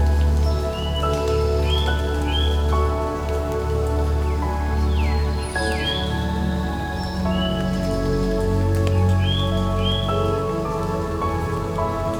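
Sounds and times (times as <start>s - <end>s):
water dripping and pattering in quiet woods: 0.0s - 12.1s.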